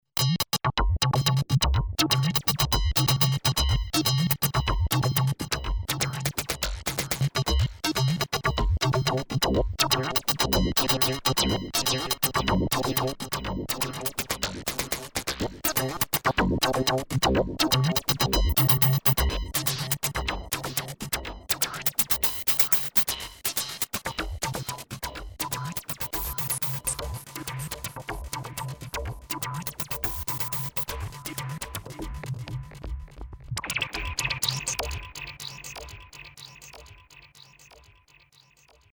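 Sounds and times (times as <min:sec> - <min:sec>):
Yamaha DX200 synthesizer: 0:00.2 - 0:38.9.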